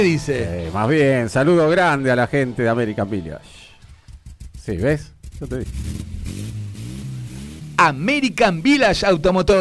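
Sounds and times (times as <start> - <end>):
speech: 0.0 - 3.6, 4.7 - 6.1, 7.8 - 9.5
car engine revving over a steady idle: 3.7 - 9.5.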